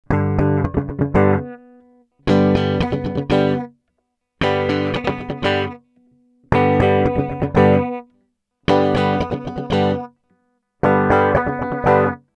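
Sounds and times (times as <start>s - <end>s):
Basslab guitar: 0.0s - 12.3s.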